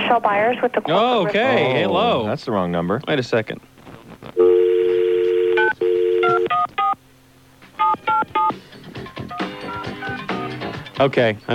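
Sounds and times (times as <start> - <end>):
speech: 0.1 - 4.5, 11.0 - 11.5
telephone keypad tones as a number is dialed: 4.4 - 7.0, 7.8 - 8.6.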